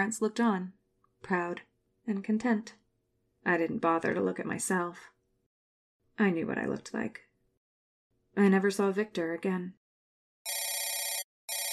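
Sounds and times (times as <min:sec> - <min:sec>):
speech: 0:00.0 - 0:02.8, 0:03.4 - 0:05.1, 0:06.2 - 0:07.3, 0:08.4 - 0:09.8
telephone bell ringing: 0:10.4 - 0:11.7.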